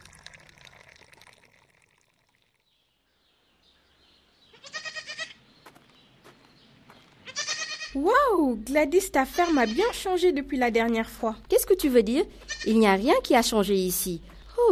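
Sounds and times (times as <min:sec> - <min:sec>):
soft rushing watery background: 0:00.0 - 0:02.6
goats bleating outdoors on a farm: 0:04.6 - 0:05.4, 0:07.3 - 0:08.0, 0:09.3 - 0:10.0
speech: 0:08.0 - 0:14.7.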